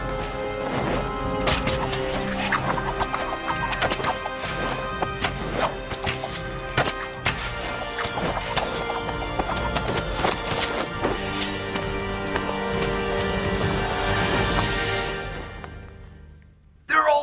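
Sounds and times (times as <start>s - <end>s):
sustained tonal background: 0.0s - 17.2s
horses galloping with hooves clip-clopping: 8.2s - 16.0s.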